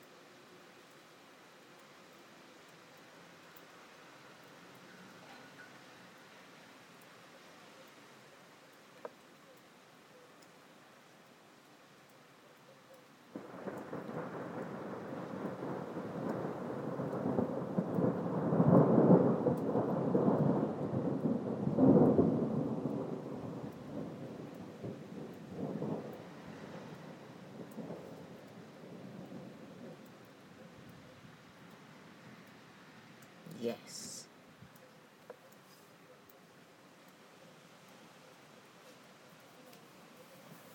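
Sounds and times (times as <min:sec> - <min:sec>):
steady wash of rain: 0:00.0 - 0:40.7
rolling thunder rumbling during a rainstorm: 0:13.3 - 0:32.3
speech: 0:33.6 - 0:34.1.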